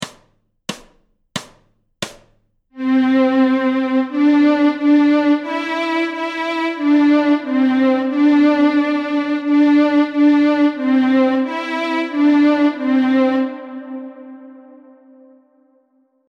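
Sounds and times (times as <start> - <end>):
fiddle bowed on the C string: 2.8 - 15.5.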